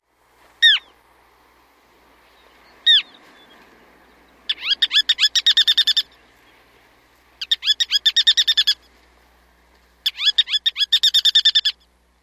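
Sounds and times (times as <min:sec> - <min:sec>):
ruddy turnstone calling near nest: 0:00.6 - 0:01.0, 0:02.2 - 0:09.2, 0:09.8 - 0:12.0.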